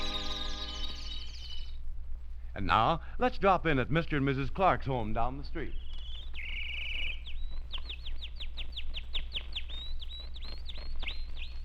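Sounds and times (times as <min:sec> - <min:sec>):
pet canary chirping and singing in a home: 0:00.0 - 0:01.8, 0:05.6 - 0:11.6
faint low hum: 0:00.0 - 0:11.6
speech: 0:02.6 - 0:05.8.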